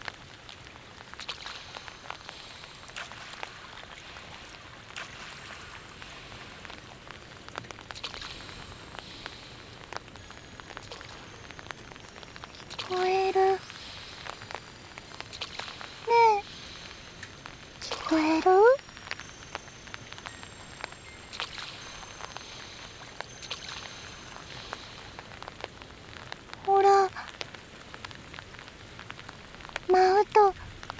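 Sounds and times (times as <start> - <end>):
steady rain pattering on a hard surface: 0.0 - 30.9
short voiced sounds: 12.8 - 13.6, 16.1 - 16.4, 17.9 - 18.8, 26.6 - 27.3, 29.9 - 30.6.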